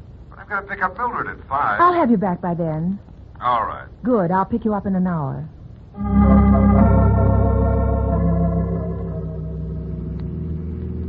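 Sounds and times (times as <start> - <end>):
speech: 0.5 - 6.9
car engine rumbling while driving out to the country: 6.8 - 11.0.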